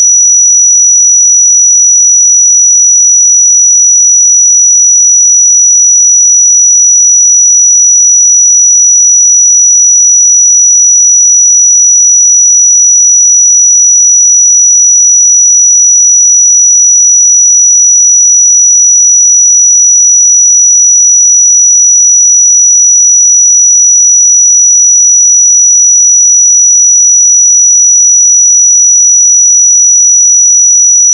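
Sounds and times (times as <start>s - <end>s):
piercing 5872 Hz pure sine tone: 0.0s - 31.1s.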